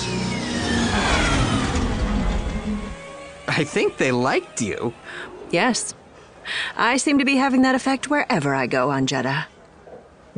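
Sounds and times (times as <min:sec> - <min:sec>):
speeder engine revving: 0:00.0 - 0:05.1
speech: 0:03.6 - 0:09.5.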